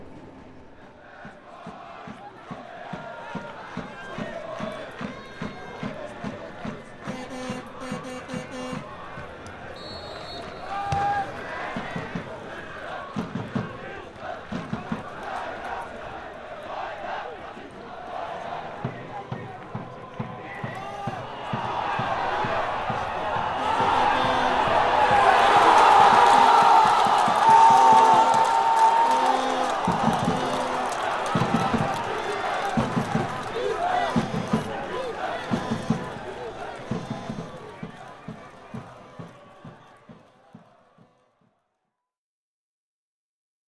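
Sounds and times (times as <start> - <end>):
soccer match crowd in a stadium: 0.0 - 41.9.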